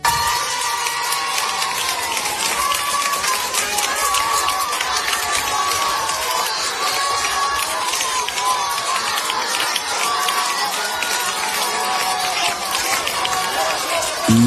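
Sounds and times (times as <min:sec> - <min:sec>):
students and teachers applauding in a corridor: 0:00.0 - 0:14.4
voices calling out: 0:14.3 - 0:14.4.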